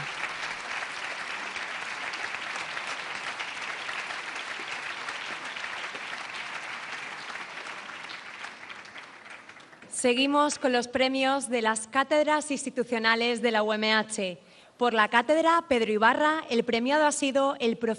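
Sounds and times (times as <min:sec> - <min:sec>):
large audience applauding at an awards ceremony after musical performances: 0:00.0 - 0:09.9
speech: 0:10.0 - 0:17.9.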